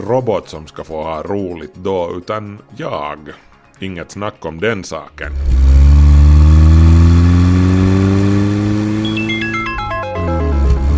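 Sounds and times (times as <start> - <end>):
speech: 0.0 - 6.0
Porsche flat-six boxer engine revving under load: 5.2 - 9.6
quick stepped gear shifts: 5.3 - 9.2.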